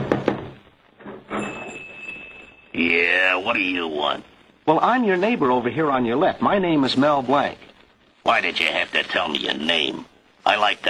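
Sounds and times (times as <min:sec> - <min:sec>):
knocking on a door: 0:00.0 - 0:00.6
speech: 0:02.8 - 0:10.8.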